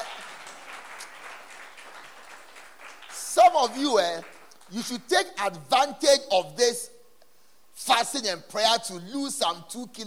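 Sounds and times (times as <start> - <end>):
audience clapping: 0.0 - 5.0
speech: 3.5 - 6.9, 7.8 - 10.0.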